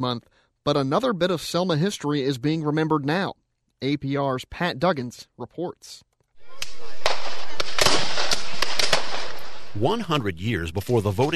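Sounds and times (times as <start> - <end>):
speech: 0.0 - 7.0, 9.8 - 11.3
gunfire at a Civil War battle reenactment: 6.4 - 11.3.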